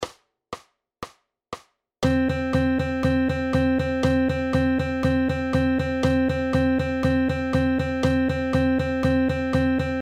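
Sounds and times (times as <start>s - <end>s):
straight eighth note rhythm without swing: 2.0s - 10.0s.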